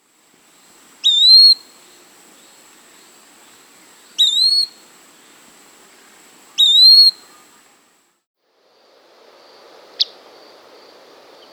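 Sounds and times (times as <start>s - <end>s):
Eastern wood-pewee song: 1.0s - 1.8s, 4.2s - 4.8s, 6.5s - 7.5s.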